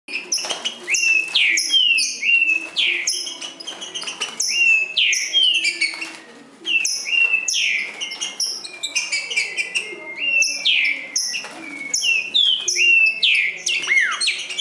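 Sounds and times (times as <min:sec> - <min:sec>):
green-winged saltator singing in the forest: 0:00.1 - 0:14.5.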